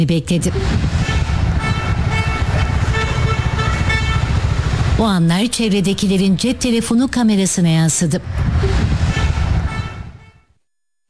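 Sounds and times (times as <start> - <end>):
speech: 0.0 - 1.2, 5.0 - 9.0
engine and traffic noise on a road: 0.4 - 10.4
car horns honking at cows crossing road: 0.5 - 7.1, 8.7 - 10.5.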